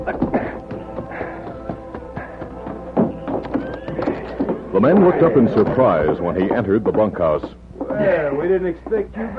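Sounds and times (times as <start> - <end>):
speech: 0.0 - 0.4, 4.8 - 9.3
hooves of a ridden horse clip-clopping: 0.0 - 9.3
horse whinnying: 3.2 - 4.8.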